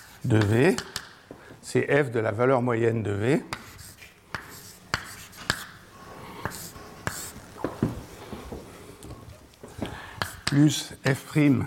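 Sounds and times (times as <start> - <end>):
faint noise: 0.0 - 11.6
speech: 0.2 - 1.0, 1.7 - 3.6, 10.6 - 11.6
sharp writing taps during a mathematics lecture: 3.5 - 5.8, 6.4 - 7.7, 10.2 - 10.6
scratchy writing strokes during a mathematics lecture: 3.5 - 8.6, 10.2 - 10.6.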